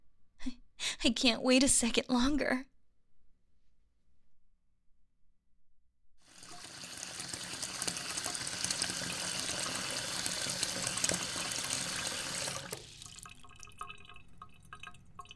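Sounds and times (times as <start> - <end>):
speech: 0.4 - 2.7
tap water gushing into a bathtub: 6.2 - 15.3.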